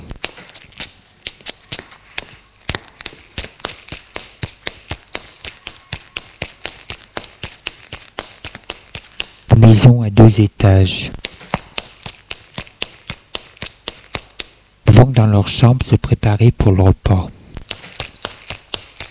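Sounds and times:
footsteps climbing white marble stairs: 0.0s - 9.5s, 11.2s - 14.6s, 17.6s - 19.0s
speech: 9.7s - 11.2s, 15.2s - 17.4s.

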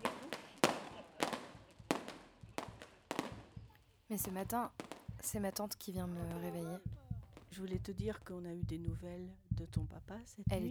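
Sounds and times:
fireworks bursting in a village: 0.0s - 6.6s
speech: 4.1s - 10.6s.

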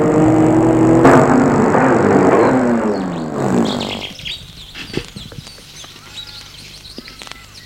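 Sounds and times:
car engine rumbling and winding down as the car stops: 0.0s - 4.6s
birds chirping in a park full of trees: 0.0s - 7.6s.

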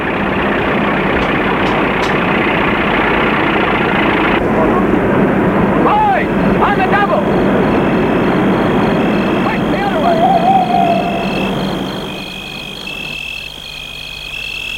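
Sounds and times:
truck engine idling: 0.0s - 14.7s
voices: 4.2s - 11.9s.

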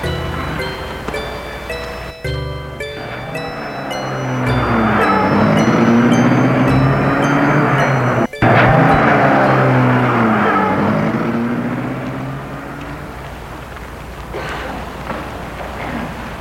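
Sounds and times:
car engine revving: 0.0s - 2.1s, 2.7s - 14.3s
car pulling away: 0.0s - 16.3s.

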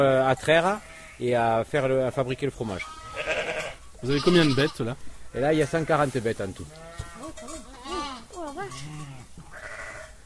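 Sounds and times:
speech: 0.0s - 3.0s, 4.0s - 6.9s
farm flock of sheep and goats bleating: 0.5s - 1.5s, 2.5s - 10.2s.

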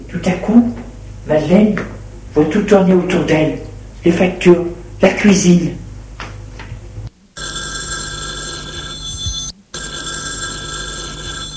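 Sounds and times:
speech: 0.1s - 5.8s
telephone bell ringing with bright metallic tone: 7.4s - 11.5s.

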